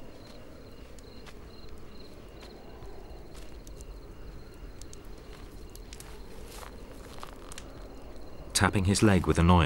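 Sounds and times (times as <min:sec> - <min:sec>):
thin continuous insect chirring: 0:00.0 - 0:09.6
footsteps crunching pacing back and forth: 0:01.2 - 0:02.6, 0:03.2 - 0:03.9, 0:04.9 - 0:07.8
speech: 0:08.6 - 0:09.6.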